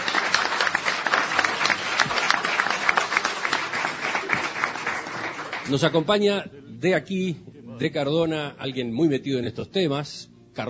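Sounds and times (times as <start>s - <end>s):
studio audience applause at a live radio broadcast in Cardona: 0.0s - 6.2s
speech: 5.7s - 10.6s.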